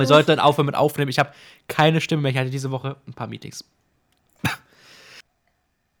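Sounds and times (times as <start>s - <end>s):
speech: 0.0s - 3.8s, 4.4s - 4.6s
man coughing: 4.4s - 4.8s.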